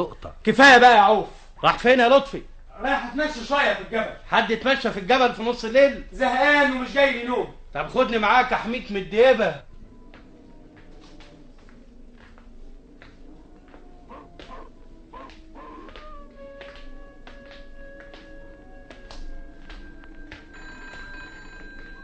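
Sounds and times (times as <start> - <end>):
speech: 0.0 - 9.7
telephone bell ringing at night: 20.5 - 22.0.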